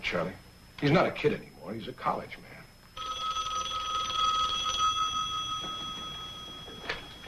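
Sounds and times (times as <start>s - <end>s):
speech: 0.1s - 2.6s
telephone ringing with a long-distance call from Washington: 3.0s - 7.2s.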